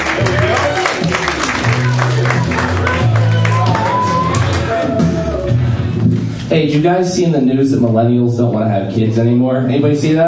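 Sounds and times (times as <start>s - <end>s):
comedy show audience applauding and cheering: 0.0s - 5.8s
audience whoops and shouts: 3.3s - 5.6s
speech: 6.5s - 10.2s.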